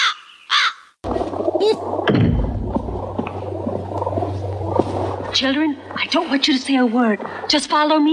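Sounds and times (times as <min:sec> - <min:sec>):
crow cawing: 0:00.0 - 0:00.9
steady low rumble: 0:01.1 - 0:07.5
speech: 0:05.4 - 0:08.1.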